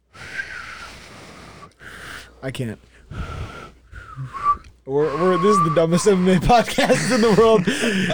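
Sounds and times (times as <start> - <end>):
person whistling one breathy airy tone: 0.2 - 1.0, 4.0 - 6.4
speech: 2.4 - 3.6, 4.2 - 8.1
laughter: 5.6 - 8.1.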